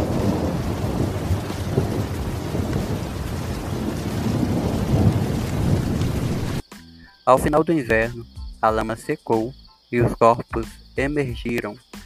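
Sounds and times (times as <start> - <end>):
deep rumble: 0.0 - 6.6
heavy rain: 0.0 - 6.6
speech: 7.3 - 11.9.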